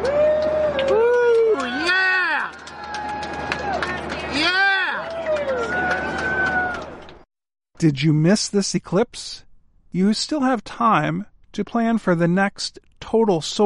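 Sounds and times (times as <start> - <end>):
airplane passengers cheering and whooping: 0.0 - 7.2
speech: 7.8 - 13.6.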